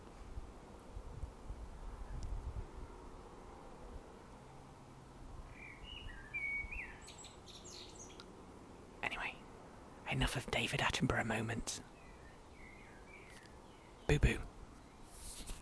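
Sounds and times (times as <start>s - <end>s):
low outdoor wind rumble: 0.0s - 15.6s
blackbird singing after rain: 5.5s - 8.3s, 11.8s - 14.2s
speech: 10.1s - 12.0s, 14.1s - 14.5s.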